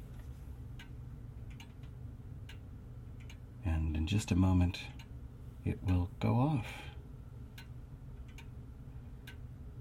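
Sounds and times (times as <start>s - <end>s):
low constant room hum: 0.0s - 9.7s
old grandmother clock pendulum ticking: 0.7s - 3.5s, 4.3s - 5.2s, 7.5s - 8.6s, 9.2s - 9.5s
speech: 3.6s - 5.0s, 5.6s - 6.9s.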